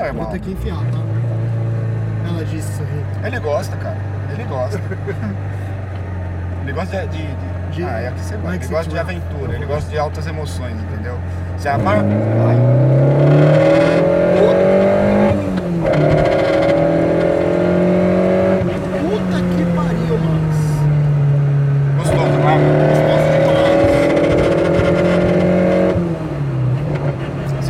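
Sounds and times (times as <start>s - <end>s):
speech: 0.0s - 1.2s, 2.2s - 5.7s, 6.6s - 13.8s
loud car exhaust roaring while driving: 0.0s - 27.6s
laughter: 4.6s - 5.7s.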